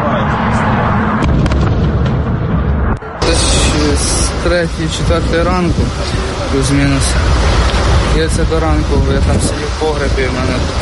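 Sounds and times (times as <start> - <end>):
rumbling of explosions after missile strikes: 1.0 - 10.8
speech: 4.5 - 10.8.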